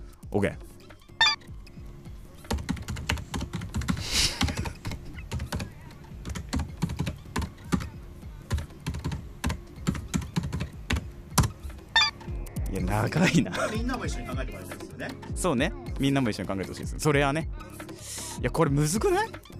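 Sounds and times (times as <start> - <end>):
speech: 0.3 - 0.7, 12.9 - 17.5, 18.4 - 19.5
computer keyboard typing: 2.4 - 12.8
laughter: 4.0 - 5.2, 13.0 - 14.4.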